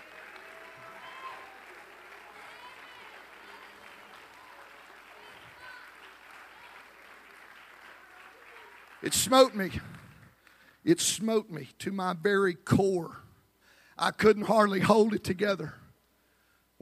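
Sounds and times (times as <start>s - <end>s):
large audience clapping hands: 0.0s - 10.7s
speech: 9.0s - 10.0s, 10.8s - 13.2s, 14.0s - 15.8s.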